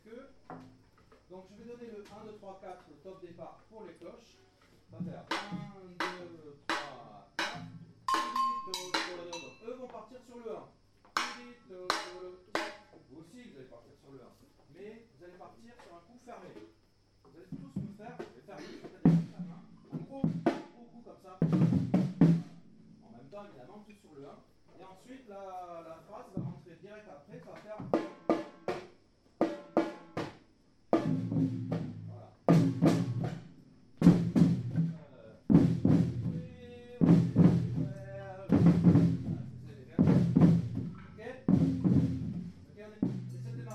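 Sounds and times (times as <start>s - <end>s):
afoxe surdo drum: 4.9s - 9.6s, 11.1s - 13.0s, 17.5s - 23.2s, 26.3s - 26.7s, 27.4s - 43.7s
batucada drumming: 5.0s - 9.8s, 11.2s - 13.0s, 21.4s - 23.1s, 31.0s - 43.7s.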